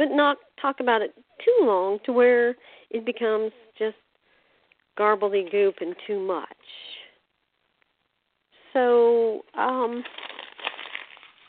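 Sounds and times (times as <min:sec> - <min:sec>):
speech: 0:00.0 - 0:04.0, 0:05.0 - 0:06.9, 0:08.8 - 0:10.3
paper being crinkled and crumpled up by hand: 0:09.6 - 0:11.4.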